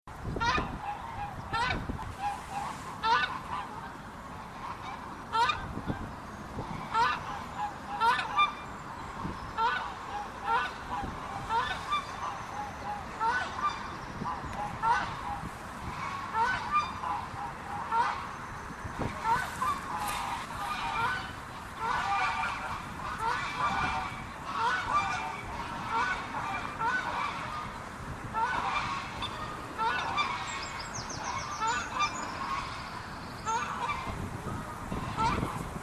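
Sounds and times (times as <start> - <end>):
swan goose calling: 0.3 - 35.7.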